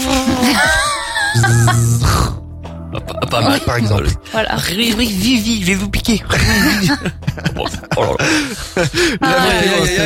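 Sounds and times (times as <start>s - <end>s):
person imitating a tiger mosquito's buzz: 0.0s - 0.6s, 1.3s - 2.4s
laughter: 0.1s - 2.0s, 2.9s - 4.0s, 6.4s - 10.0s
speech: 3.4s - 10.0s.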